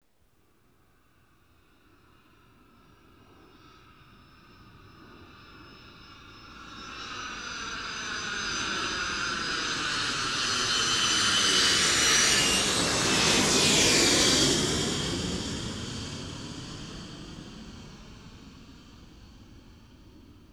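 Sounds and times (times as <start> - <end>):
jet flying by: 7.7 - 20.3.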